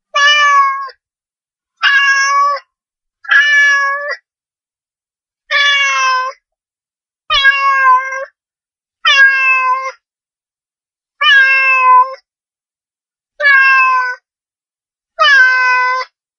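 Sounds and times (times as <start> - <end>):
cat crying loudly: 0.2 - 0.9, 1.8 - 2.6, 3.3 - 4.2, 5.5 - 6.4, 7.3 - 8.3, 9.1 - 10.0, 11.2 - 12.2, 13.4 - 14.2, 15.2 - 16.1.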